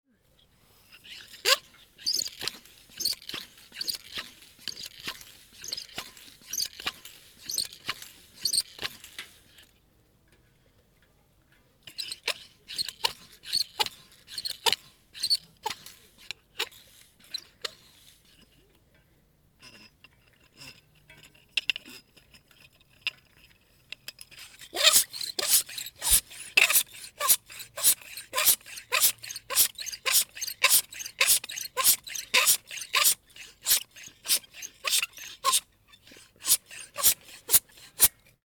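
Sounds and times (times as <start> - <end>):
bicycle pump inflating a bicycle wheel: 0.8 - 9.6, 11.9 - 18.4, 24.3 - 38.3.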